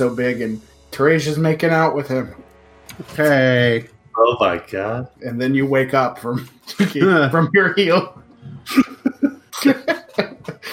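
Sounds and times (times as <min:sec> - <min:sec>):
speech: 0:00.0 - 0:08.9, 0:09.6 - 0:10.0
laughter: 0:06.2 - 0:10.7
voice acting out harsh coughing: 0:08.7 - 0:10.7.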